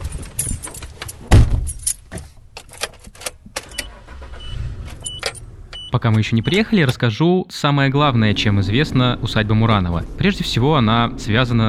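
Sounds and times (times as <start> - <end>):
rattles and jangling clicks: 0.0 - 4.2, 4.8 - 7.0
car road rumble heard from inside: 0.0 - 7.1, 7.7 - 11.6
heavy thump: 1.2 - 2.4
speech: 6.0 - 11.6.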